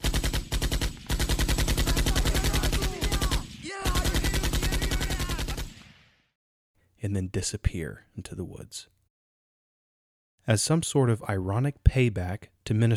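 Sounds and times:
machine gun fire from high ground on enemy troops: 0.0 - 6.1
speech: 7.0 - 9.0, 10.4 - 12.9.

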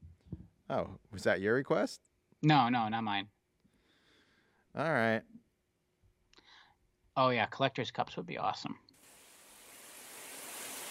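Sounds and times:
speech: 0.7 - 3.4, 4.8 - 5.4, 7.2 - 8.8
shower water running: 9.0 - 10.8.

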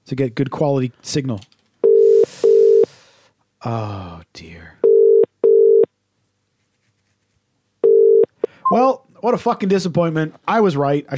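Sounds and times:
speech: 0.1 - 1.5, 3.6 - 4.8, 8.7 - 11.1
ringing tone of an unanswered phone call: 1.8 - 2.9, 4.8 - 5.9, 7.8 - 8.8.

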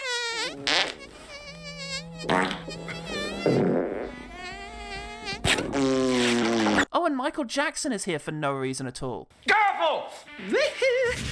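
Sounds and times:
comic cartoon fart sound: 0.0 - 6.9
speech: 2.2 - 2.8, 3.4 - 4.0, 7.1 - 11.2.

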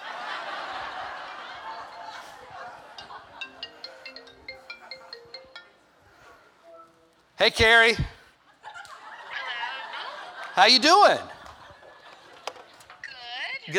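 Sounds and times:
laughter: 0.0 - 6.2, 8.5 - 13.1
crowd chatter: 0.0 - 7.2
phone ringtone of bright electronic tones: 1.8 - 6.4
speech: 7.4 - 8.1, 10.6 - 11.3.

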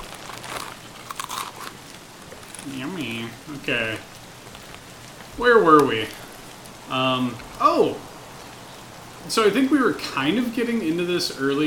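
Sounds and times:
person biting and chewing crunchy food: 0.0 - 7.6
speech: 2.6 - 4.2, 5.4 - 6.2, 6.9 - 8.1, 9.2 - 11.6.

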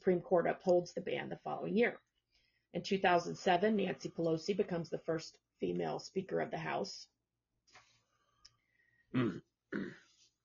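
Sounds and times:
speech: 0.0 - 2.1, 2.7 - 7.1, 9.1 - 10.0
person clearing throat: 9.2 - 10.1.

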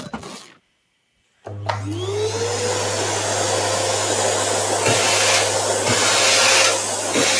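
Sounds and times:
vacuum cleaner running with rising motor whine: 1.5 - 7.3.

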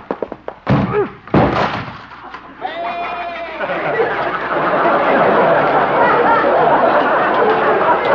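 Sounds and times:
door breaking with a splintering crash: 0.6 - 2.3
crowd chatter and laughter: 2.5 - 8.1.

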